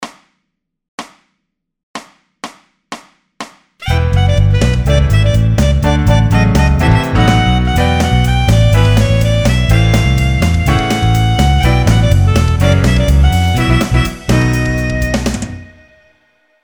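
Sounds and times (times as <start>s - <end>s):
Motown rhythm and blues music: 3.8s - 15.8s.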